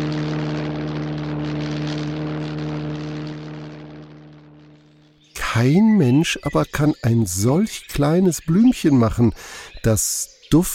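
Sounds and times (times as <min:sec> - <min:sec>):
propeller airplane engine droning: 0:00.0 - 0:06.1
speech: 0:05.6 - 0:10.7.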